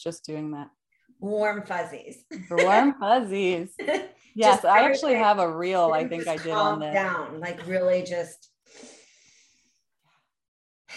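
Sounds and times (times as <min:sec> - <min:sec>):
speech: 0:00.0 - 0:08.9
exhale through the nose in an alternate nostril breathing exercise: 0:08.6 - 0:09.8
soft breath: 0:08.7 - 0:09.9.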